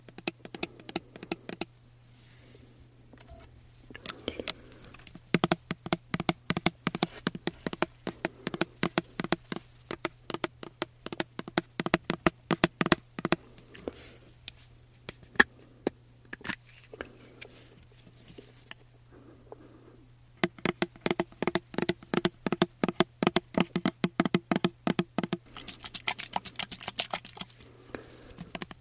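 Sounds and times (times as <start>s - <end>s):
fingernails tapping on diffuser and body mist bottles: 0.0s - 1.7s, 5.3s - 13.4s, 20.4s - 27.6s, 28.4s - 28.7s.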